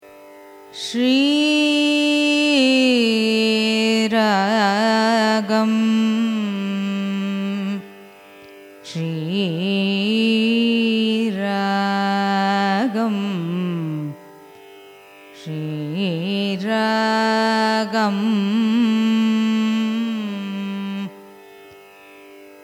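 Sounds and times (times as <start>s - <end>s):
Carnatic music: 0.0s - 22.6s.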